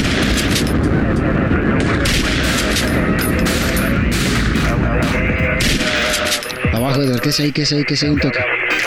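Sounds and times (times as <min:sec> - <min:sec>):
gunfire in a shootout: 0:00.0 - 0:06.9
speech: 0:07.0 - 0:08.6.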